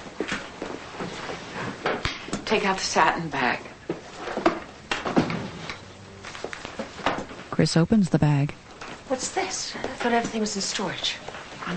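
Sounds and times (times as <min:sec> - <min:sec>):
speech: 0:02.5 - 0:03.7, 0:07.6 - 0:11.7
top drawer of a large side table pulled open: 0:04.1 - 0:05.9.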